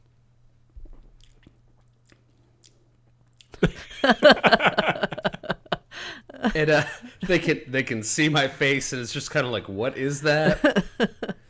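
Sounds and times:
pickle-flavoured snack cracked open: 1.2s - 3.6s
laughter: 3.6s - 11.4s
speech: 4.0s - 4.7s, 6.6s - 11.2s.

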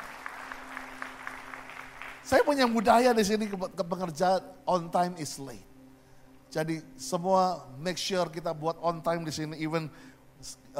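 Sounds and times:
church audience clapping in rhythm: 0.0s - 3.7s
speech: 2.3s - 5.7s, 6.5s - 10.7s.

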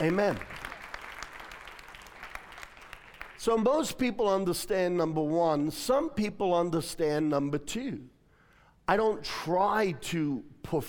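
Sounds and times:
speech: 0.0s - 0.5s, 3.4s - 8.1s, 8.9s - 10.8s
audience clapping in a room: 0.0s - 3.4s.

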